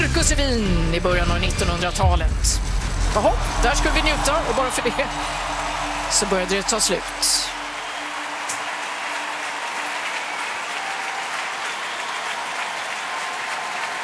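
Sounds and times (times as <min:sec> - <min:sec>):
speech: 0:00.3 - 0:07.5
large full-house arena audience applauding: 0:02.9 - 0:14.0.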